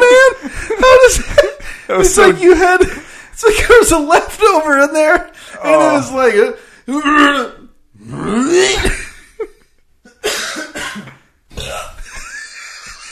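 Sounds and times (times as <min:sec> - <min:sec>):
laughter: 0:00.0 - 0:03.0, 0:12.0 - 0:13.1
speech: 0:01.9 - 0:09.0
deep gargly burps: 0:11.5 - 0:12.1.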